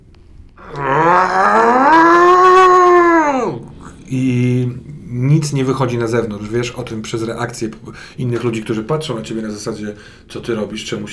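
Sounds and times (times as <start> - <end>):
speech: 0.6 - 0.9, 5.4 - 11.1
human voice imitating an anguished scream: 0.6 - 3.7.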